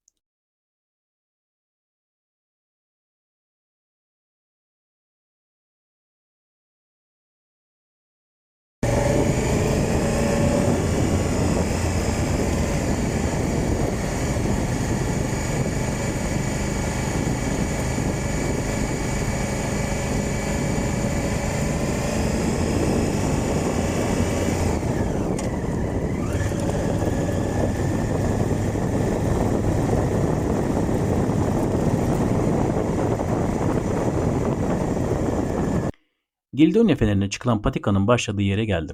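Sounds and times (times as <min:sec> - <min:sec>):
motorcycle engine droning on rough stony road on the Lycian Way: 0:08.8 - 0:36.1
speech: 0:36.6 - 0:38.9.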